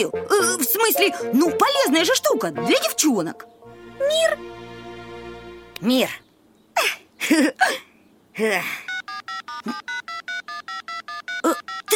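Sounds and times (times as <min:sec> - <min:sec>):
speech: 0:00.0 - 0:04.6, 0:05.8 - 0:06.2, 0:06.8 - 0:08.9, 0:09.6 - 0:10.0
mother's mobile phone ringing with short electronic beeps: 0:08.9 - 0:11.9.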